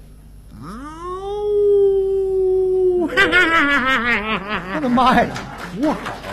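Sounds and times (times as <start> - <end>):
wolf howling at night in a pine forest at the foot of a mountain: 0.5 - 3.2
laughter: 2.9 - 6.3
speech: 4.8 - 6.3.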